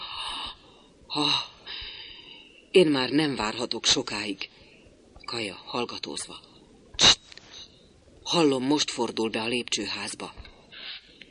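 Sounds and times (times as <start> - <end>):
man breathing heavily with wheezy gasping breaths: 0.0 - 2.7
speech: 1.2 - 1.5, 2.8 - 4.6, 5.3 - 6.5, 8.3 - 10.5.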